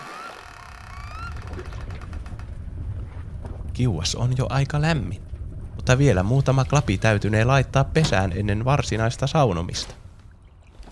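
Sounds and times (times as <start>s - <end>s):
wooden sauna door creaking open: 0.0s - 2.5s
speech: 3.8s - 5.3s, 5.9s - 10.0s.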